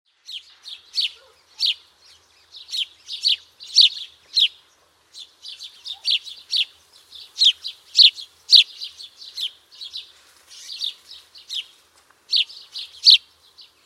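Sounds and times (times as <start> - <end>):
house sparrow chirping: 0.1 - 13.8.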